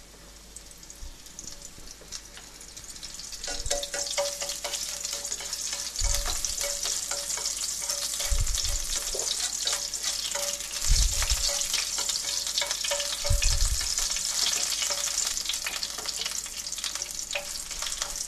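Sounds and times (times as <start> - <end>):
sliced garlic sizzling in hot olive oil with chili peppers in a pot: 0.0 - 18.2
low thuds and clinks from stirring: 3.5 - 16.3.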